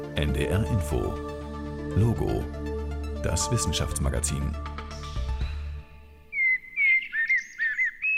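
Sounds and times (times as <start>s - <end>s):
speech: 0.2s - 1.3s, 2.0s - 2.6s, 3.2s - 5.1s
blackbird singing fluting whistled phrases: 6.2s - 8.1s.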